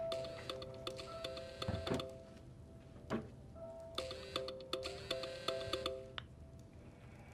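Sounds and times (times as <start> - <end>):
phone ringtone playing a bright repeating electronic melody for an incoming call: 0.1 - 2.1, 3.9 - 6.2.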